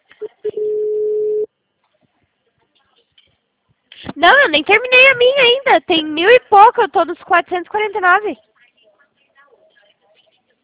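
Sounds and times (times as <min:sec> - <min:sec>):
telephone tone on an outgoing call: 0:00.2 - 0:01.5
speech: 0:04.2 - 0:08.5.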